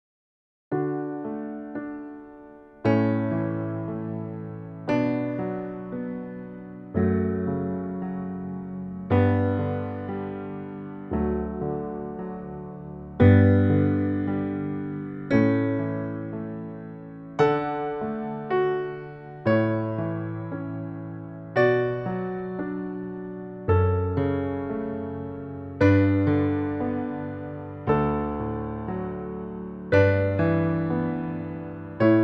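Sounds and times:
jazz piano wedding processional: 0.7 - 32.2.

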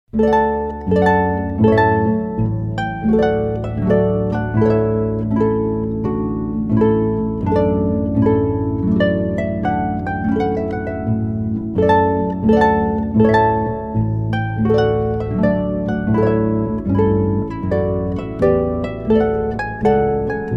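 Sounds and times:
classical harp playing a trumpet tune: 0.1 - 20.5.

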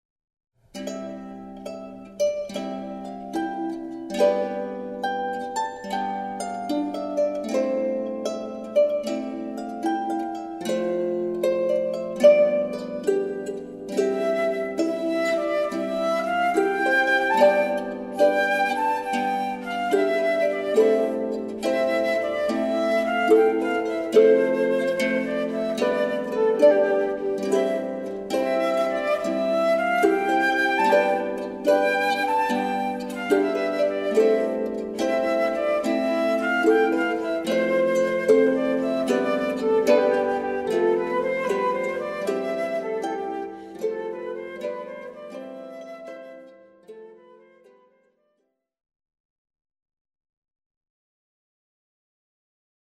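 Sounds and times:
harp: 0.6 - 48.1
flute: 0.8 - 48.3.

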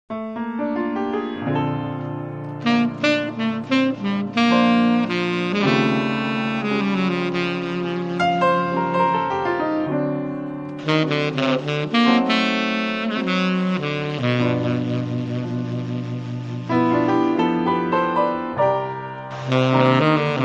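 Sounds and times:
piano quartet playing: 0.1 - 20.4.

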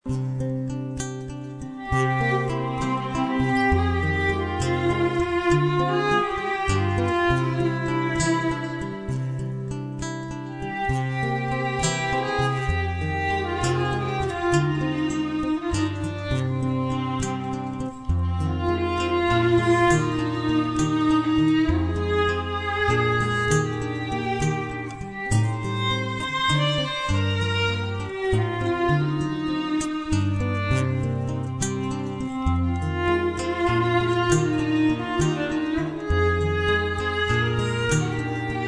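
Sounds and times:
classical guitar: 0.0 - 38.6.

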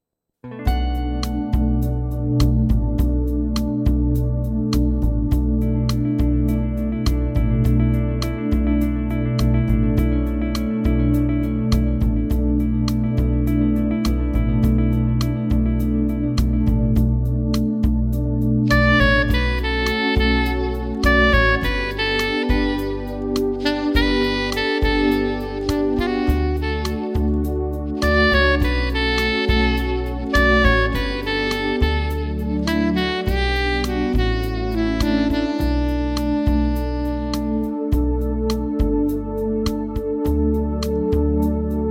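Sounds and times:
jazz saxophone: 0.5 - 41.8.

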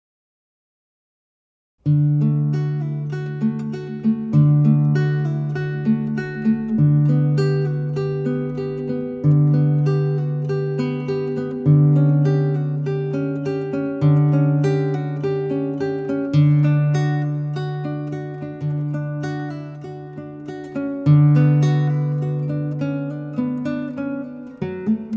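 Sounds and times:
prelude in D on acoustic guitar: 1.8 - 25.1.

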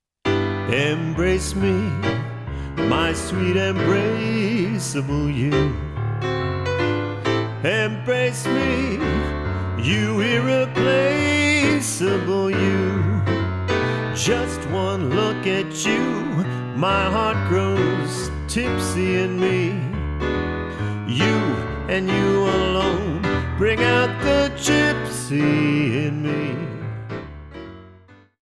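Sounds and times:
jazz piano: 0.2 - 28.4
person singing jazz vocals: 0.6 - 6.0, 7.6 - 20.1, 20.8 - 27.0.

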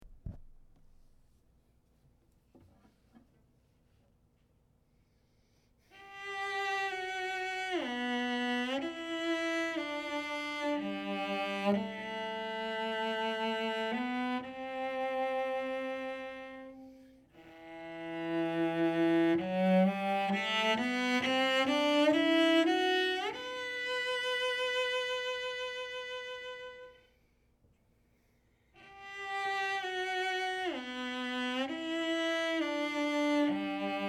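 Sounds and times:
cello: 5.8 - 27.3, 28.6 - 34.0.

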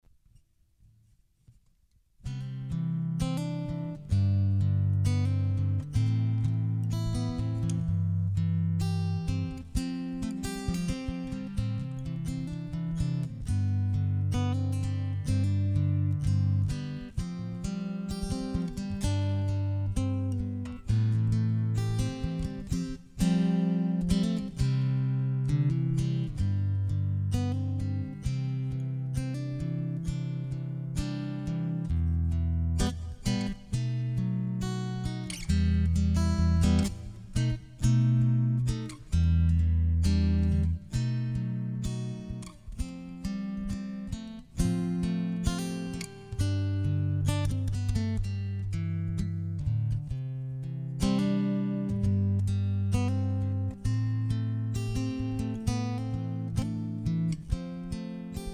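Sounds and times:
classical guitar instrumental on acoustic guitar: 2.2 - 58.5.

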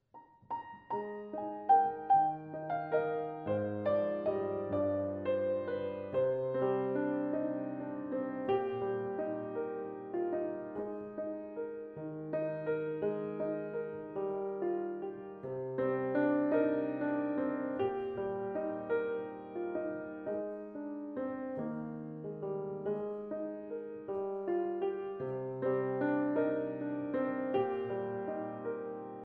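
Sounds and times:
classical solo piano piece: 0.0 - 29.2.

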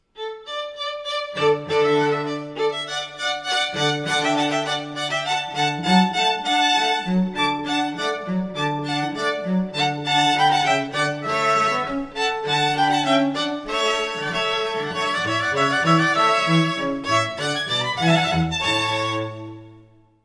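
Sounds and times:
string trio playing: 0.2 - 20.0.

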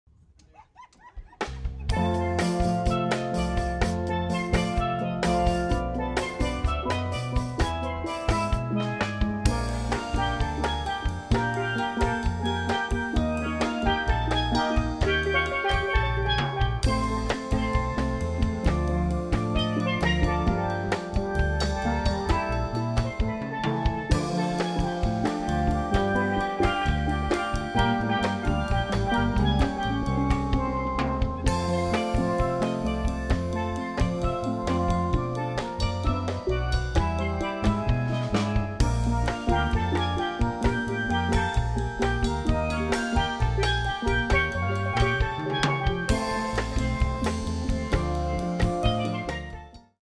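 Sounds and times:
laughter: 0.4 - 1.9
samba music: 1.3 - 50.0.

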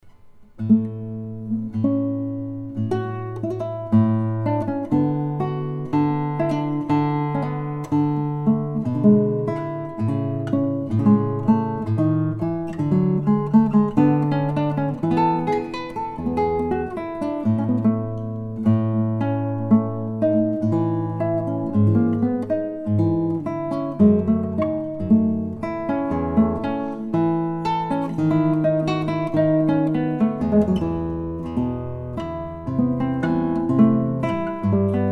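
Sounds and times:
sonata on classical acoustic guitar: 0.0 - 35.1.

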